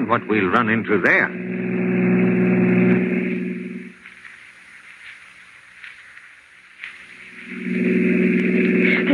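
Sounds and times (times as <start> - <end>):
car engine revving as the car drives fast: 0.0 - 4.1, 7.2 - 9.1
speech: 0.1 - 1.5.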